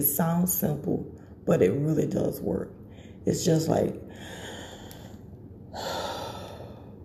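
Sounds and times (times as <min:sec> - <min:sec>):
speech: 0:00.0 - 0:04.5
deep breath taken to ease anxiety: 0:04.1 - 0:07.0.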